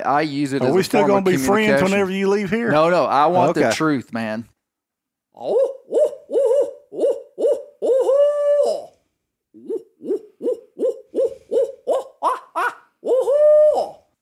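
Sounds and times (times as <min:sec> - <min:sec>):
speech: 0:00.0 - 0:04.5, 0:05.4 - 0:05.8
man imitating owl hoots: 0:05.4 - 0:09.0, 0:09.6 - 0:14.1.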